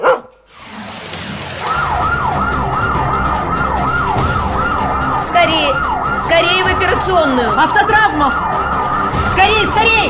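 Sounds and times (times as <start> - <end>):
brief sharp sound: 0.5 - 2.2
rumbling traffic: 0.5 - 10.0
ambulance siren wailing: 1.4 - 10.0
speech: 5.4 - 10.0.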